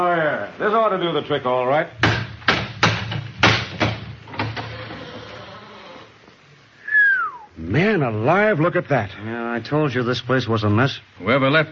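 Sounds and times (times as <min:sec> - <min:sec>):
speech: 0:00.0 - 0:02.1, 0:07.7 - 0:11.6
heavy hammer blows against a locked door: 0:02.0 - 0:04.6
forced door rattling: 0:02.0 - 0:05.4
forced door creaking open: 0:03.9 - 0:06.2.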